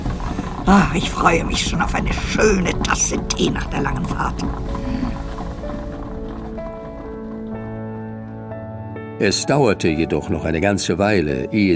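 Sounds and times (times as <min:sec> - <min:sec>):
horse-drawn carriage hooves and wheels clattering on a park drive: 0:00.0 - 0:08.6
sustained musical tones: 0:00.0 - 0:10.7
speech: 0:00.7 - 0:04.9, 0:09.2 - 0:11.7.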